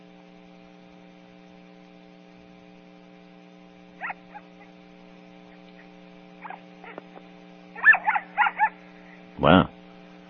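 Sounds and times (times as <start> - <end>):
steady low electrical hum: 0.0 - 10.2
dog barking with strongly modulated pitch-varying voice: 4.0 - 4.7, 6.4 - 7.0, 7.8 - 8.8
speech: 9.4 - 9.7.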